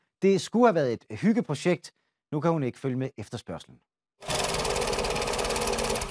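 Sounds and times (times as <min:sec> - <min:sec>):
speech: 0:00.2 - 0:03.9
sewing machine running: 0:04.2 - 0:06.0.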